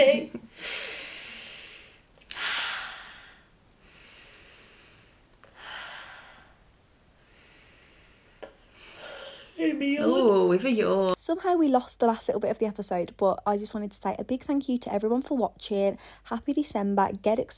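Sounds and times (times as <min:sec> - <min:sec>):
slow deep breaths taken in a paced rhythm: 0:00.5 - 0:09.6
speech: 0:09.8 - 0:17.5.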